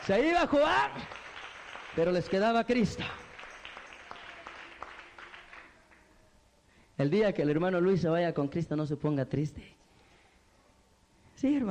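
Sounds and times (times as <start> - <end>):
speech: 0.0 - 1.2, 2.0 - 3.2, 7.0 - 9.8, 11.4 - 11.7
audience applauding: 0.0 - 6.1.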